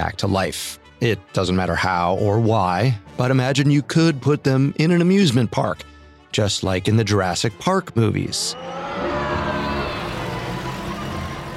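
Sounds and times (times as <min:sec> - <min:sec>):
speech: 0:00.1 - 0:09.2
car engine rumbling while driving: 0:09.4 - 0:11.5.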